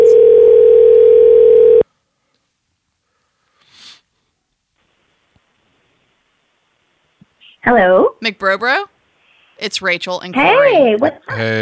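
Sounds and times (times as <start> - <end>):
telephone dial tone while placing a phone call: 0.0 - 1.8
soft breathy sniff: 3.0 - 4.2
speech: 7.7 - 8.9, 9.6 - 11.6.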